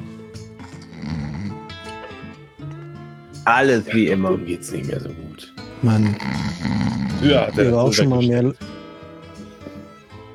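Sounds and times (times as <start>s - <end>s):
man snoring with his head on a table: 0.0s - 2.3s, 5.8s - 8.1s
speech: 3.5s - 8.8s.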